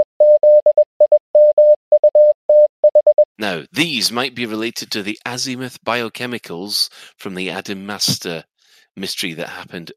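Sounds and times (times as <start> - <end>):
Morse code beeps from a steady single-pitched tone: 0.0 - 3.3
speech: 3.4 - 9.9.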